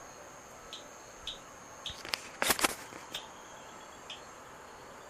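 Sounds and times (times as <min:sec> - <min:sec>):
Eleutherodactylus lentus calling softly at Barren Spot: 0:00.7 - 0:02.1, 0:03.1 - 0:04.4.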